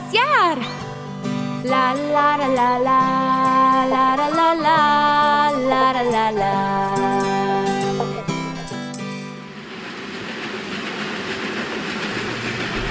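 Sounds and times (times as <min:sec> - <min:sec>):
short passage of music: 0:00.0 - 0:09.6
speech: 0:00.1 - 0:00.8, 0:01.6 - 0:07.2
train rolling on rails: 0:01.7 - 0:12.8.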